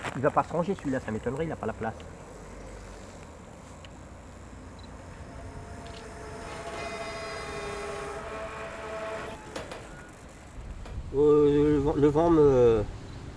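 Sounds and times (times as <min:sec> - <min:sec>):
speech: 0:00.2 - 0:02.2, 0:11.2 - 0:13.0
freight train horn-like wavering tone: 0:05.2 - 0:09.5.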